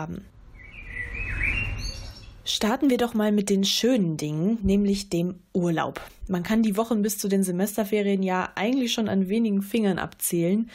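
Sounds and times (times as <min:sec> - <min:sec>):
speech: 0:00.0 - 0:00.4, 0:02.5 - 0:10.7
small birds chirping and warbling: 0:00.5 - 0:02.5.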